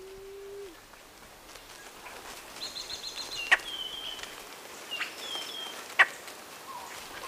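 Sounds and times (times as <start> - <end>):
Blue-headed quail-dove Starnoenas cyanocephala cooing in a Cuban forest: 0.0 - 0.8
faint higher birdsong in a Cuban forest: 1.6 - 7.2.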